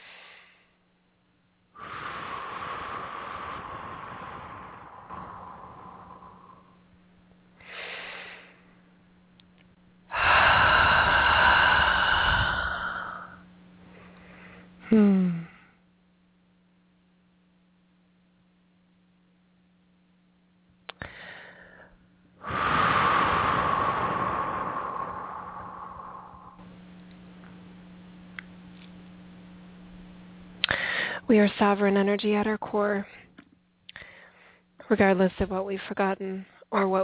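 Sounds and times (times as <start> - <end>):
deep breathing in through the nose, out through the mouth: 0.0 - 0.8, 1.7 - 8.8, 10.1 - 15.8, 20.9 - 26.7, 30.6 - 31.3, 33.9 - 34.7
faint steady hum: 0.0 - 37.0
speech: 31.3 - 33.1, 34.9 - 37.0.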